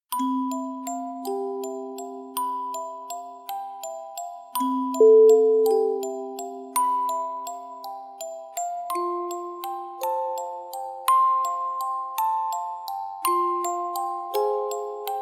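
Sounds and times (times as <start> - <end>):
peaceful music box lullaby: 0.1 - 15.2.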